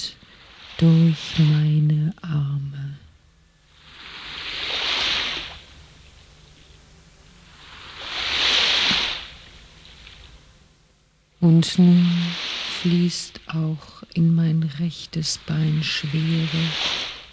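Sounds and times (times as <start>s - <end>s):
ocean waves breaking on a beach: 0.0s - 2.0s, 3.6s - 6.4s, 7.3s - 10.4s, 11.4s - 14.1s, 14.7s - 17.3s
speech: 0.8s - 2.3s, 11.4s - 17.1s.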